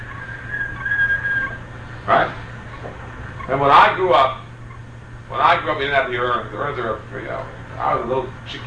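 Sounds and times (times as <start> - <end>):
kettle whistling: 0.0 - 1.7
low hum: 0.0 - 8.6
speech: 3.5 - 4.4, 5.3 - 8.6.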